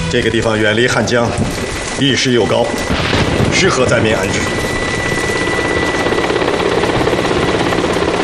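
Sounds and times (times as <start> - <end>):
speech: 0.1 - 4.7
helicopter arriving with engine whine and rotor wash: 0.5 - 8.2.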